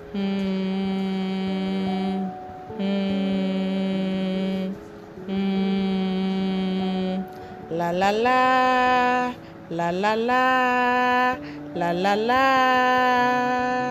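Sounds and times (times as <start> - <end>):
person humming as a vocal warm-up: 0.0 - 13.8
speech: 0.1 - 0.4, 7.9 - 13.8
person breathing: 9.4 - 9.7, 11.4 - 11.7.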